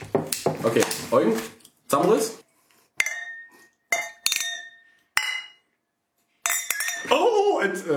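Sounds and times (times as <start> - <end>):
speech: 0.6 - 2.4, 7.6 - 7.9
glasses clinking together in a toast: 3.0 - 5.7, 6.4 - 7.2.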